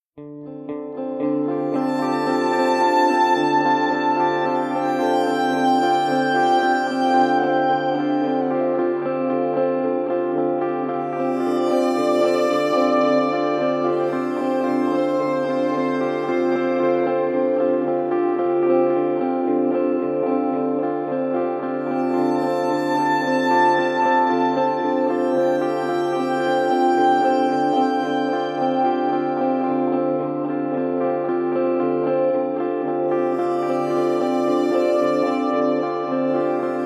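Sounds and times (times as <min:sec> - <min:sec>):
ambient guitar: 0:00.2 - 0:36.8.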